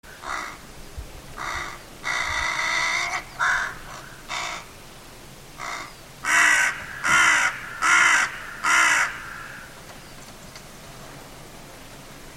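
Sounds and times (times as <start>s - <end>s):
bird cawing: 0.1s - 0.6s, 1.4s - 4.7s, 5.6s - 10.1s.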